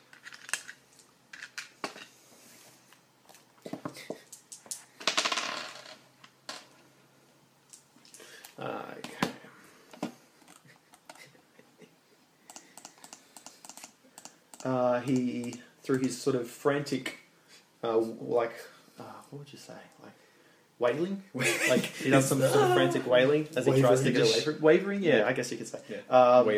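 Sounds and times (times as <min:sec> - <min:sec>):
dice rattling across a hard surface: 0:04.3 - 0:06.7
speech: 0:15.0 - 0:17.2, 0:17.8 - 0:20.2, 0:20.8 - 0:26.5.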